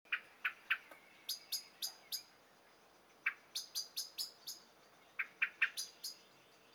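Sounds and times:
common blackbird Turdus merula sharp clicking calls: 0.1s - 2.3s, 3.2s - 4.6s, 5.2s - 6.2s.

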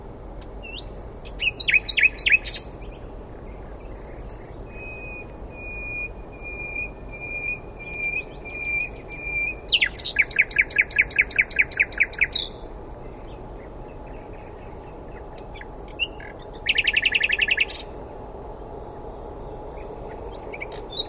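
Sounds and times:
common nightingale song with rattles and whistles: 0.6s - 2.8s, 3.8s - 12.6s, 15.2s - 18.0s, 19.4s - 21.0s.

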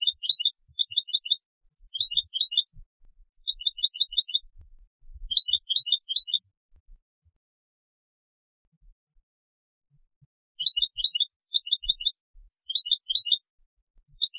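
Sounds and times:
European goldfinch calling with high tinkling chirps: 0.0s - 2.8s, 3.4s - 4.5s, 5.1s - 6.5s, 10.6s - 13.5s, 14.1s - 14.3s.

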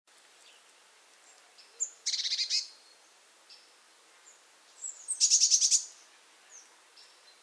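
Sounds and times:
Eurasian blue tit Cyanistes caeruleus giving scolding churrs: 2.0s - 2.7s, 5.1s - 5.9s.

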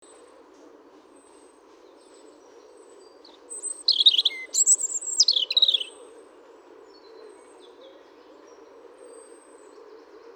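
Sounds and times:
European robin singing high thin whistles and rapid twittering: 3.6s - 6.0s.

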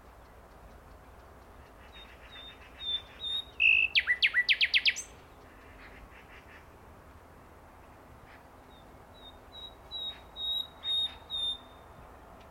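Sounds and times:
common nightingale Luscinia megarhynchos singing: 1.9s - 5.2s, 9.1s - 11.9s.

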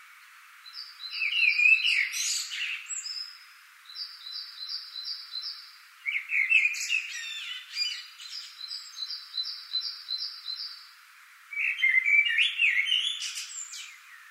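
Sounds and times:
common blackbird Turdus merula singing: 0.7s - 10.9s, 11.5s - 14.3s.

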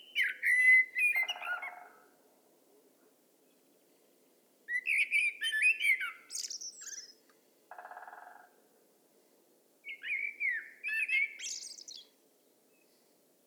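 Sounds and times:
common blackbird Turdus merula song: 0.0s - 2.1s, 3.4s - 8.4s, 9.8s - 13.2s.

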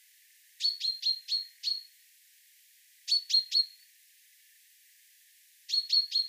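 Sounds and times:
common chaffinch chinking calls: 0.6s - 1.9s, 3.1s - 3.9s, 5.7s - 6.2s.

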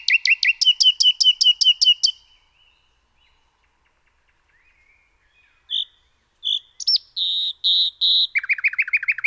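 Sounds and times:
common nightingale Luscinia megarhynchos singing: 0.0s - 9.2s.

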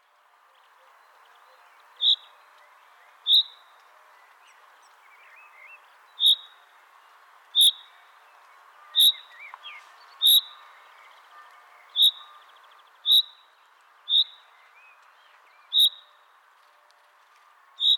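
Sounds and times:
steady background hiss: 0.0s - 17.9s
common chaffinch Fringilla coelebs giving short sharp high calls: 6.2s - 6.6s, 7.6s - 7.9s, 8.9s - 10.6s, 11.9s - 12.4s, 13.0s - 13.5s, 14.1s - 14.5s, 15.7s - 16.1s, 17.8s - 17.9s.

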